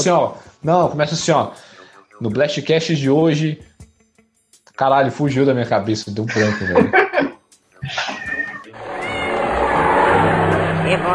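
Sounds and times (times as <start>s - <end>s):
speech: 0.0s - 3.7s, 4.8s - 7.2s
laughter: 6.3s - 8.7s
cat meowing: 8.0s - 10.3s
loud rushing noise: 8.8s - 11.1s.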